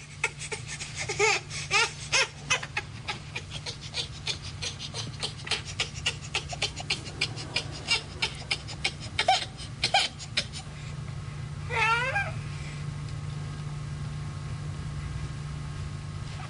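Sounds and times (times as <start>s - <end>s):
steady low hum: 0.0s - 16.4s
baby crying in short strained wails and whimpers: 1.1s - 10.6s.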